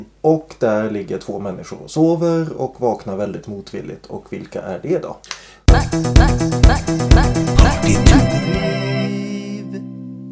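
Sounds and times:
speech: 0.2 - 8.9
short podcast jingle: 5.7 - 10.0.

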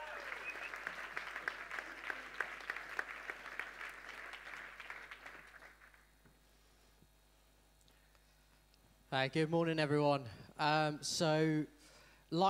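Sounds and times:
scattered whoops from the crowd: 0.0 - 2.4
audience clapping and cheering: 0.0 - 6.1
speech: 9.1 - 12.4.

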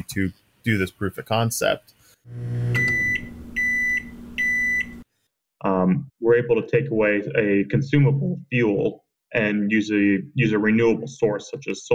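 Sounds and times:
speech: 0.1 - 3.2, 5.6 - 11.9
low electrical hum of a microwave oven: 2.3 - 5.0
microwave oven beeping: 2.3 - 5.0.

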